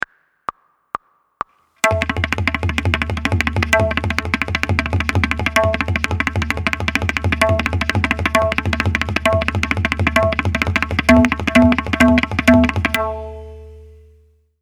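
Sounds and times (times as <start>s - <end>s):
drum long roll practice: 1.8s - 13.3s.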